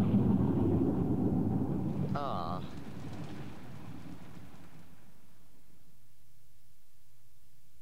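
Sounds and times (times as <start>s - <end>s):
rain hissing: 0.0s - 5.2s
faint low rumble: 0.0s - 7.8s.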